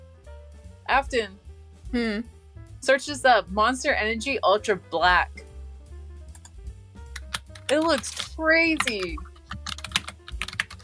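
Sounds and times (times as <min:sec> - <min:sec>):
speech: 0:00.9 - 0:05.4, 0:07.7 - 0:09.3
computer keyboard typing: 0:06.3 - 0:10.8.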